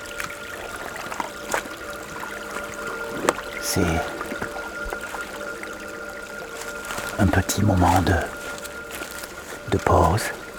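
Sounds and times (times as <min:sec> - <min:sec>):
mountain stream water flowing: 0:00.0 - 0:10.5
speech: 0:03.7 - 0:04.2, 0:07.2 - 0:08.4, 0:09.7 - 0:10.4.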